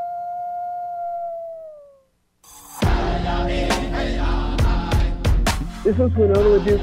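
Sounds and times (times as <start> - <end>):
wolf howling: 0.0 - 2.1
loud music with percussive hits: 2.5 - 6.8
speech: 5.8 - 6.8.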